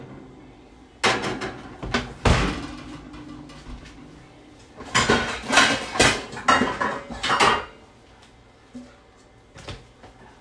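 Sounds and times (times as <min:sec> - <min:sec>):
metal pots and dishes clattering as a cooking pot is taken out: 0:01.0 - 0:04.2, 0:04.8 - 0:07.8.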